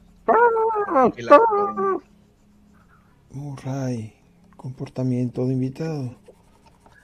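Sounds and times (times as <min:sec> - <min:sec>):
person imitating a dog barking: 0:00.3 - 0:02.0
speech: 0:01.0 - 0:02.1, 0:03.4 - 0:06.2.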